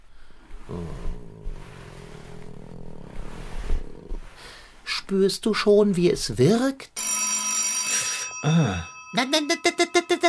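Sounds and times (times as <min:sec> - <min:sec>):
contented male cat purring while being stroked: 0:00.5 - 0:04.8
speech: 0:00.7 - 0:01.2, 0:05.1 - 0:06.9, 0:08.4 - 0:10.2
telephone ringing with electronic tone: 0:07.0 - 0:10.2.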